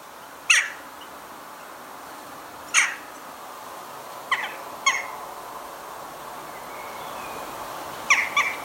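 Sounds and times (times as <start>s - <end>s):
Western jackdaw chack calls in a garden: 0.5s - 0.8s, 2.7s - 3.2s, 4.3s - 5.2s, 8.0s - 8.6s.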